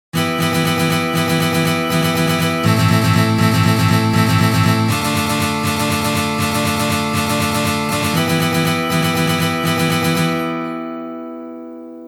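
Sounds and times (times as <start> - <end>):
Chechen strumming rhythm on guitar: 0.2 - 12.0.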